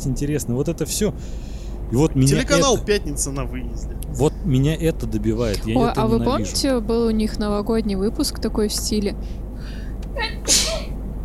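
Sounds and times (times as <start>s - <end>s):
speech: 0.0s - 10.6s
low steady hum: 0.0s - 11.2s
person sneezing: 10.4s - 10.9s.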